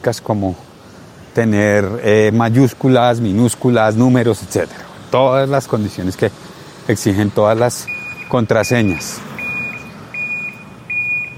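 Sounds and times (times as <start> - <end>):
speech: 0.0 - 0.7, 1.4 - 9.3
reversing vehicle backup alarm beeping: 7.8 - 11.3.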